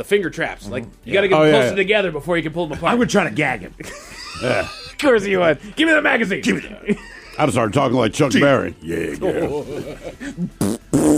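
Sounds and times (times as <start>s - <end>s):
speech: 0.0s - 11.1s
laughter: 2.7s - 5.1s, 6.4s - 7.8s, 8.9s - 10.6s
short buzzy rumbling farts: 10.5s - 11.1s.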